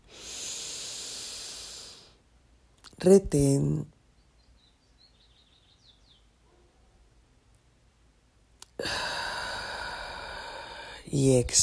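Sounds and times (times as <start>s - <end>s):
slow deep inhalation during a guided breathing exercise: 0.0s - 2.2s, 8.6s - 11.1s
speech: 3.0s - 3.9s, 11.2s - 11.6s.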